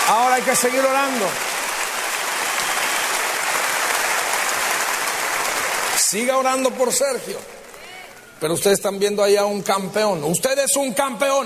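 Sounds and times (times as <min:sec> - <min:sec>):
crowd applauding: 0:00.0 - 0:08.8
speech: 0:00.1 - 0:01.5, 0:06.1 - 0:07.6, 0:08.4 - 0:11.4.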